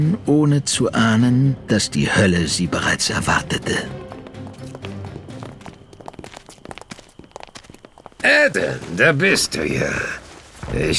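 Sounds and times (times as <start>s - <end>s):
speech: 0.0s - 4.1s, 8.2s - 10.9s
footsteps walking: 3.2s - 10.9s.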